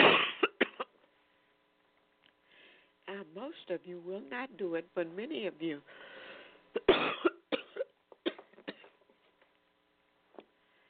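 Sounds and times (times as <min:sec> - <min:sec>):
person coughing harshly: 0:00.0 - 0:01.0, 0:06.8 - 0:09.0
speech: 0:03.2 - 0:06.1.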